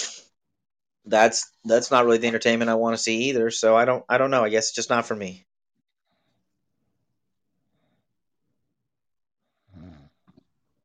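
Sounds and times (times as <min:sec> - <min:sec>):
speech: 0:01.1 - 0:05.5
person snoring: 0:09.5 - 0:10.4.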